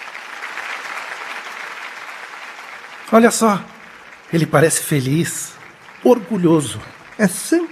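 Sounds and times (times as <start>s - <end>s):
theatre audience applauding a composer after a performance: 0.0s - 7.7s
speech: 3.1s - 7.7s.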